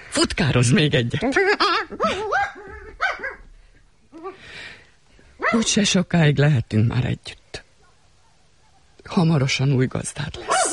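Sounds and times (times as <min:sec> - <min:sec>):
speech: 0:00.2 - 0:02.7, 0:05.5 - 0:07.4, 0:09.0 - 0:10.5
dog barking with high yappy barks: 0:02.0 - 0:03.4, 0:05.4 - 0:05.7, 0:10.4 - 0:10.7.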